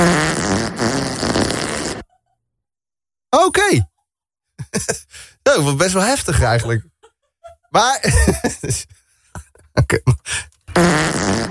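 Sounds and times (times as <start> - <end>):
loud drawn-out buzzing fart: 0.0 - 2.1, 10.7 - 11.4
speech: 3.5 - 3.9, 4.7 - 6.9, 7.7 - 9.0, 9.8 - 11.4
laughter: 4.6 - 5.2, 6.3 - 10.3.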